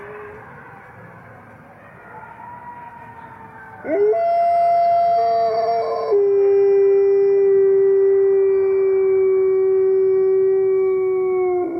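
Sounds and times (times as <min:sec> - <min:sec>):
wolf pack howling: 0:03.4 - 0:11.7.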